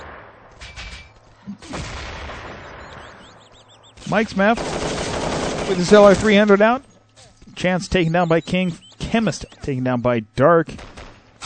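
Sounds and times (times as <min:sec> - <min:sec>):
grenades exploding in a video game: 0:00.0 - 0:06.5
gritty din in a video game: 0:00.0 - 0:11.4
speech: 0:01.5 - 0:02.0, 0:04.1 - 0:04.8, 0:05.7 - 0:06.9, 0:07.6 - 0:10.9.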